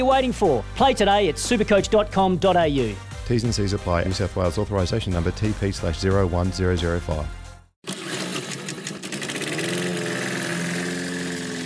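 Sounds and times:
speech: 0:00.0 - 0:07.4
small petrol lawn mower engine running: 0:07.8 - 0:11.6.

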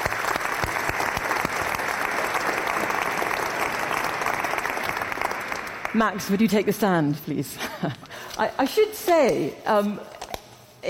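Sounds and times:
audience applause: 0:00.0 - 0:06.1
speech: 0:06.0 - 0:10.2.

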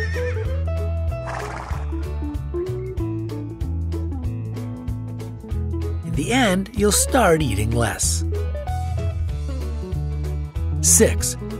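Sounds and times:
short shrill horse whinny: 0:00.0 - 0:00.5, 0:01.2 - 0:02.1
music with a pulsing bass line: 0:00.0 - 0:11.5
speech: 0:06.2 - 0:08.3, 0:11.0 - 0:11.4.

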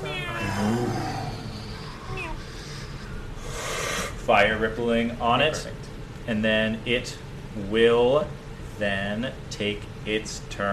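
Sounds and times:
person imitating a cute high-pitched cat meow with their voice: 0:00.0 - 0:02.4
speech: 0:04.3 - 0:10.7.

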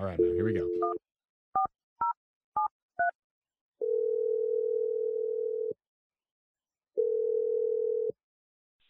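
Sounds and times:
person speaking: 0:00.0 - 0:01.0
telephone ringing tones: 0:03.8 - 0:05.8, 0:07.0 - 0:08.2.

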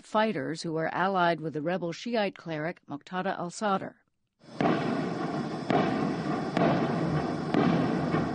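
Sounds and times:
speech: 0:00.1 - 0:04.8
dense continuous crackling roar: 0:04.5 - 0:08.3
explosions from an ignited arms cache: 0:04.5 - 0:08.3.

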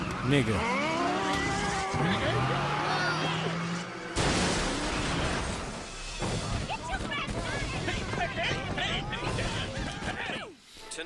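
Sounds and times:
voices in commotion: 0:00.0 - 0:04.1, 0:06.3 - 0:10.6
car engine roaring: 0:00.0 - 0:09.8
tires squealing in a skid: 0:00.0 - 0:10.4
speech: 0:00.3 - 0:00.8, 0:02.0 - 0:02.7
car crashing into a shop: 0:04.1 - 0:10.2
debris clattering: 0:04.1 - 0:10.4.

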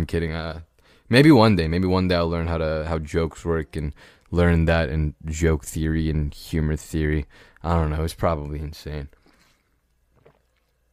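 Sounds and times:
speech: 0:00.0 - 0:09.2
person swallowing water: 0:09.2 - 0:10.9.

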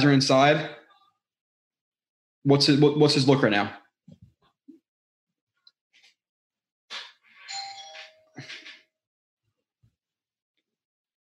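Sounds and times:
speech: 0:00.0 - 0:00.8, 0:02.4 - 0:03.8
loud electronic doorbell chime ringing: 0:07.5 - 0:08.4.

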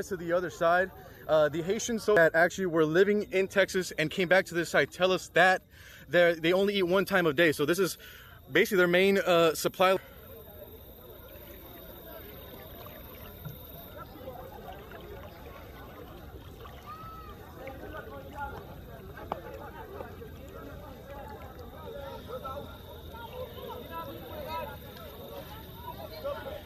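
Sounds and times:
speech: 0:00.0 - 0:10.1
water churning as someone wades chest-deep across the Rio Grande: 0:10.0 - 0:26.6.

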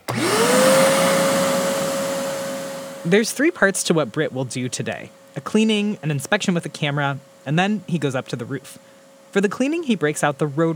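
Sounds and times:
double-filtered vacuum running in a living room for chimney cleaning: 0:00.0 - 0:10.7
speech: 0:03.0 - 0:10.7.

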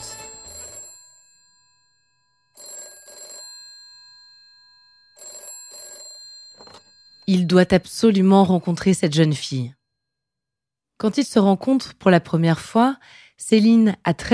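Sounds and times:
telephone ringing: 0:00.0 - 0:09.5
speech: 0:07.3 - 0:09.8, 0:11.0 - 0:14.3.

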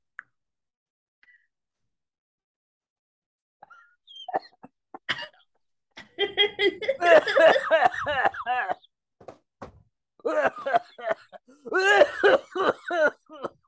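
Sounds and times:
person in a coughing fit: 0:04.4 - 0:05.4, 0:06.8 - 0:08.8, 0:11.6 - 0:13.6
laughter: 0:06.0 - 0:08.9.

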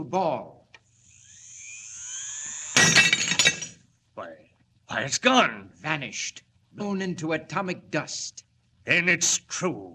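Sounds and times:
speech: 0:00.0 - 0:00.6, 0:04.2 - 0:09.9
thin high-pitched whine: 0:01.0 - 0:03.6
pane of glass shattering: 0:02.7 - 0:03.8
glass shards tinkling: 0:02.8 - 0:03.8.

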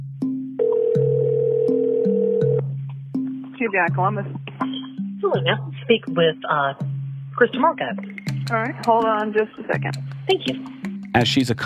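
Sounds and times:
ringback tone on an outgoing phone call: 0:00.6 - 0:02.6
speech: 0:03.6 - 0:04.4, 0:05.2 - 0:11.6.

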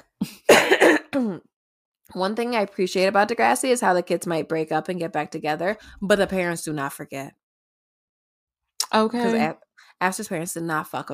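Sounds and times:
person coughing: 0:00.2 - 0:01.5
speech: 0:02.1 - 0:07.4, 0:08.9 - 0:11.1.

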